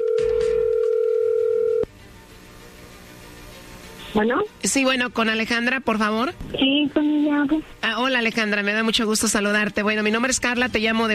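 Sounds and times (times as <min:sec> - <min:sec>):
telephone line tone on a phone call being dialed: 0:00.0 - 0:01.9
speech: 0:04.2 - 0:11.1.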